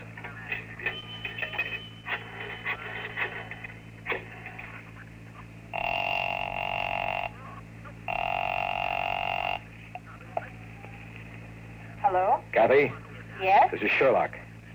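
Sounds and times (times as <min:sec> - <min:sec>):
10-cent coin clinking into a payphone: 0:00.0 - 0:03.6
long buzzing telephone rings: 0:00.0 - 0:04.7, 0:05.7 - 0:07.4, 0:08.1 - 0:09.7
speech: 0:12.7 - 0:14.4.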